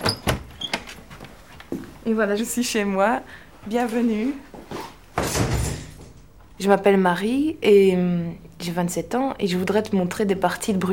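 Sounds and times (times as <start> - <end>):
front door being unlocked and opened: 0.0 - 1.0
speech: 2.1 - 4.5, 6.6 - 10.9.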